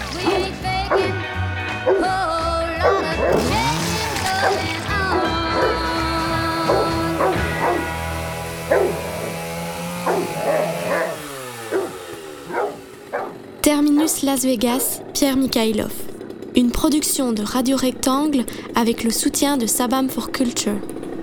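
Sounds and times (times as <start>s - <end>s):
Doberman dogs barking and yipping: 0.1s - 1.2s, 1.8s - 2.2s, 2.8s - 3.6s, 4.4s - 15.2s
speech: 14.3s - 21.0s.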